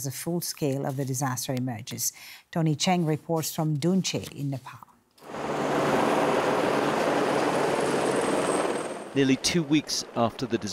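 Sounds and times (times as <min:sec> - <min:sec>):
speech: 0:00.0 - 0:04.9, 0:09.2 - 0:10.7
helicopter rotor roar while hovering: 0:05.2 - 0:10.7.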